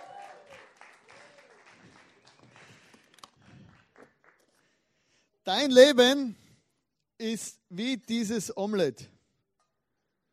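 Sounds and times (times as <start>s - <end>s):
crowd clapping: 0.0s - 4.7s
speech: 5.5s - 6.4s, 7.2s - 9.1s.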